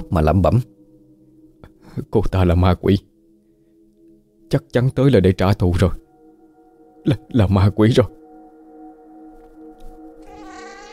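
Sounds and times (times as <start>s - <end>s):
speech: 0.1s - 0.8s, 2.0s - 3.1s, 4.5s - 6.0s, 7.0s - 8.2s
cat meowing mournfully in a hoarse wail: 10.2s - 10.9s.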